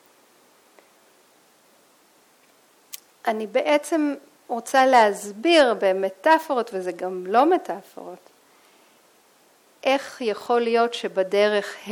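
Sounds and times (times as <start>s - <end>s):
soft steady white-noise hiss: 0.0s - 11.8s
speech: 3.2s - 8.3s, 9.8s - 11.8s.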